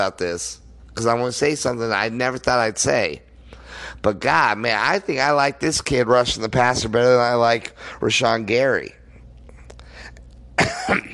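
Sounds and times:
speech: 0.0 - 9.0, 10.9 - 11.1
person coughing: 10.6 - 11.1
rough throat clearing: 10.6 - 11.1.

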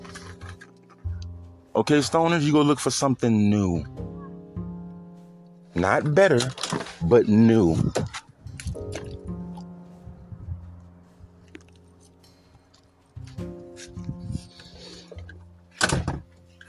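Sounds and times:
speech: 1.8 - 4.0, 5.8 - 8.0
doors slamming: 15.7 - 16.3.

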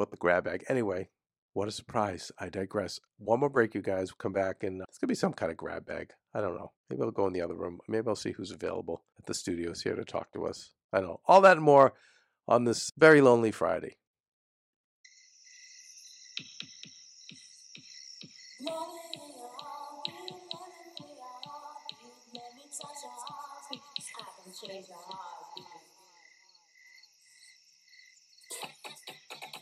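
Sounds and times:
speech: 0.0 - 14.0
crickets chirping: 15.1 - 29.6
evenly spaced sharp clicks: 16.4 - 24.4
musical bed: 18.6 - 25.8.

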